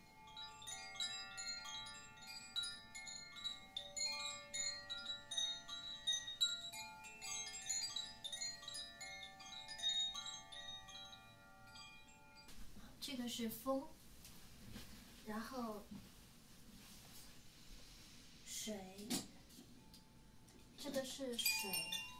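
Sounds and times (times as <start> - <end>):
multi-tone wind chime ringing: 0.0 - 12.7, 19.8 - 22.1
speech: 13.1 - 14.0, 15.3 - 16.2, 18.6 - 19.3, 20.9 - 22.0.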